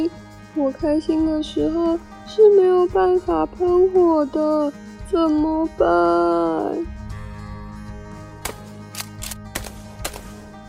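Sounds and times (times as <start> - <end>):
speech: 0.0 - 7.0
sharp gunshot cracks: 9.5 - 10.4.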